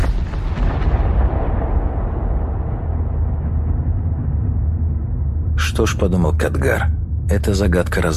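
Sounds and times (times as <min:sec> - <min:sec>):
distant muffled explosion: 0:00.0 - 0:05.6
speech: 0:05.8 - 0:08.1.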